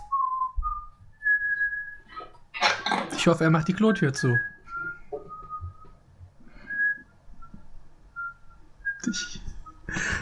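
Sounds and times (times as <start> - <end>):
person whistling a tune softly: 0.0 - 2.1, 4.2 - 6.0, 6.6 - 10.1
speech: 3.2 - 4.6.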